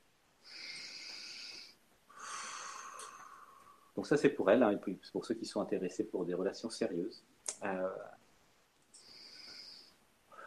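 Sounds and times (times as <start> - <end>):
slow deep breath in and out: 0.4 - 4.0, 9.0 - 10.4
speech: 4.0 - 8.1.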